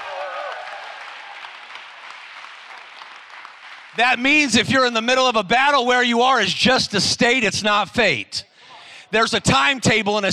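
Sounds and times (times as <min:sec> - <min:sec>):
audience members shouting and cheering: 0:00.0 - 0:01.6
audience clapping: 0:00.0 - 0:04.8
speech: 0:04.0 - 0:08.5, 0:09.1 - 0:10.3.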